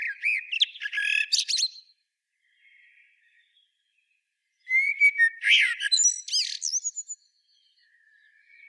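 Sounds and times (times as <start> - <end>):
common blackbird Turdus merula singing: 0.0 - 1.9, 4.6 - 8.6.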